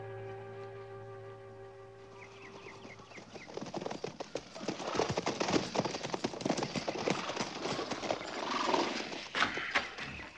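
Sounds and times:
several horses' hooves clip-clopping on hard ground: 2.2s - 10.3s.

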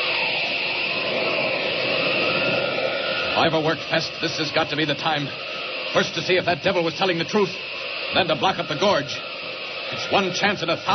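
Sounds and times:
rushing wind whoosh of a figure in a red cloak flying up a valley: 0.0s - 10.9s
speech: 3.4s - 9.3s, 9.9s - 10.9s.

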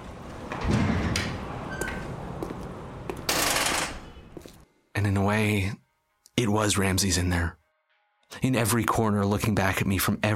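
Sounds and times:
sliding door opening with low rumble and hissing whoosh: 0.2s - 2.4s
speech: 5.1s - 5.8s, 6.4s - 7.6s, 8.3s - 10.3s.

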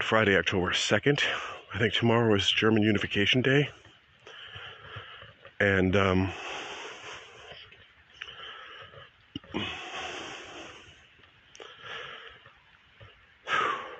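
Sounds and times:
speech: 0.1s - 3.8s, 5.6s - 6.6s
heavy breathing of a person walking very fast uphill: 4.2s - 5.6s, 6.2s - 13.9s.

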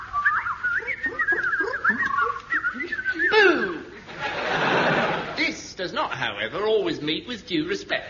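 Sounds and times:
person imitating an alarm with their voice to scare off birds: 0.8s - 4.0s
laughter: 1.6s - 5.4s
speech: 6.1s - 8.0s.

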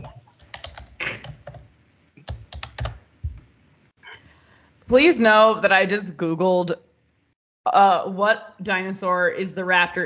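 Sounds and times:
typing on a Windows 98-style computer keyboard: 0.0s - 3.4s
speech: 4.9s - 6.8s, 7.7s - 10.0s.

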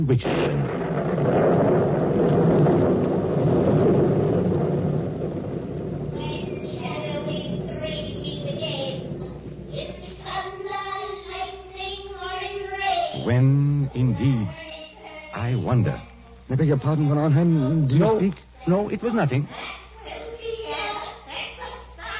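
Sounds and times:
speech: 0.0s - 1.7s, 13.4s - 14.7s, 15.4s - 19.7s
loud rolling thunder sound effect for a stage play: 0.0s - 10.5s
low rumble: 0.0s - 22.1s.

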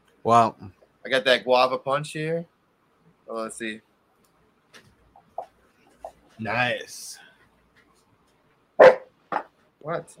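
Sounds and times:
speech: 0.2s - 2.5s, 3.3s - 3.9s, 6.4s - 7.3s, 9.8s - 10.1s
dog bark: 8.8s - 9.4s.

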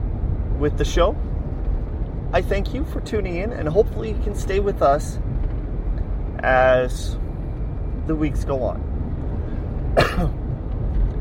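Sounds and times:
steady low rumble: 0.0s - 11.1s
speech: 0.6s - 1.3s, 2.3s - 5.3s, 6.4s - 7.2s, 8.0s - 8.9s, 10.0s - 10.4s
raspy cough: 10.0s - 10.4s.

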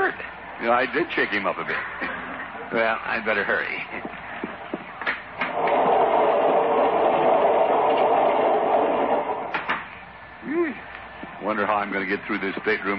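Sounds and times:
speech: 0.1s - 4.0s, 11.5s - 12.9s
train rumbling along the rails: 3.9s - 10.0s.

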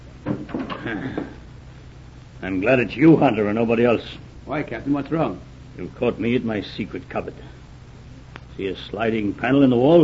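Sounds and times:
door closing thud: 0.2s - 1.4s
speech: 0.9s - 1.4s, 2.4s - 7.6s, 8.6s - 10.0s.

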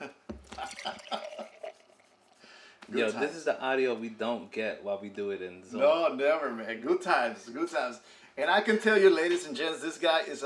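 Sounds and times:
drink being poured: 0.3s - 3.2s
liquid gurgling glugs and splashes: 0.4s - 2.5s
speech: 2.9s - 10.4s.

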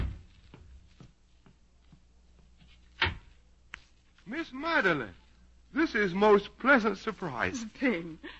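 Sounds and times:
soft footsteps tapping: 0.0s - 4.4s
speech: 4.3s - 8.3s.

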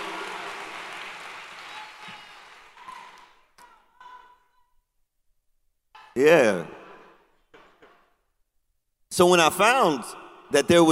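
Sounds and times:
audience applause: 0.0s - 3.6s
speech: 6.2s - 6.8s, 9.2s - 10.9s.

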